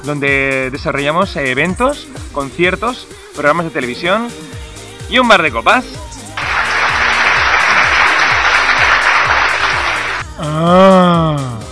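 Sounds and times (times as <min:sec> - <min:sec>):
speech: 0:00.0 - 0:06.1, 0:10.4 - 0:11.6
audience applause and cheering at a multipurpose venue and bar: 0:06.4 - 0:10.2.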